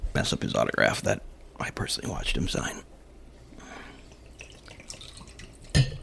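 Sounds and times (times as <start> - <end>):
speech: 0.2 - 2.9
bourbon being poured and spilling: 3.8 - 6.0.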